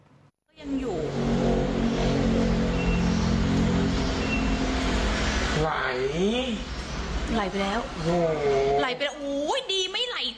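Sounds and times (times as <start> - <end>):
road noise: 0.5 - 10.2
luxury car engine rumble: 0.6 - 8.8
speech: 7.3 - 10.3.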